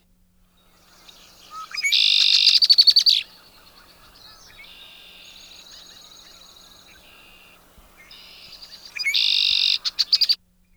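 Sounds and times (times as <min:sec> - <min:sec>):
red-winged blackbird song: 0:00.6 - 0:10.4.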